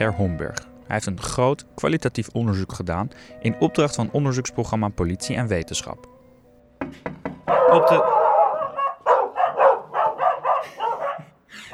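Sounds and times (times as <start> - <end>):
speech: 0.0 - 6.2, 7.7 - 8.2
dogs barking downstairs: 7.5 - 11.7.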